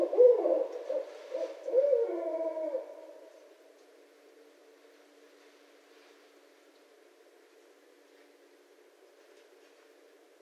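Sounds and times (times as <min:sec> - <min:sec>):
barred owl hooting: 0:00.0 - 0:03.4.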